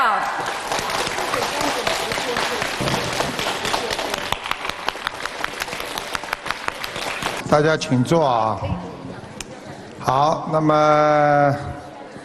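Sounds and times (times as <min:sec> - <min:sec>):
large audience applauding: 0:00.0 - 0:07.4
speech: 0:07.5 - 0:08.9, 0:10.0 - 0:11.7.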